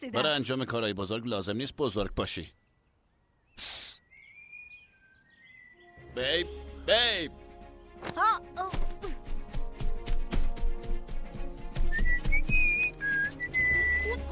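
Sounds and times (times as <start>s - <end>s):
speech: 0.0s - 2.6s, 3.6s - 3.8s, 6.2s - 7.4s, 8.0s - 9.1s
busy rhythmic background of clicks and thuds: 8.7s - 13.4s
woman whistling high wavering notes: 11.9s - 14.2s.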